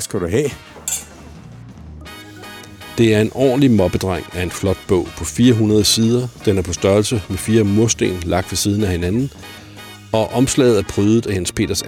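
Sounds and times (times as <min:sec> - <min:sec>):
speech: 0:00.0 - 0:00.8, 0:03.0 - 0:11.8
glasses clinking in a toast at a private book reception: 0:00.9 - 0:01.5.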